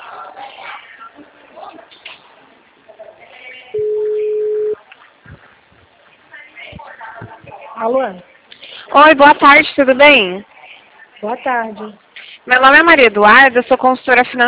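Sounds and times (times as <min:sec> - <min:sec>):
chatter: 0:00.0 - 0:14.4
phone ringback tone on a narrow phone line: 0:03.8 - 0:04.8
speech: 0:07.8 - 0:08.3, 0:09.0 - 0:10.5, 0:11.2 - 0:14.4.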